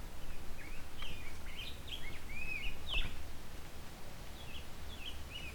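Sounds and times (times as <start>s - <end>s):
male Rose-breasted Grosbeak singing a soft warbled phrase of whistled notes: 0.2s - 3.2s, 4.3s - 5.5s.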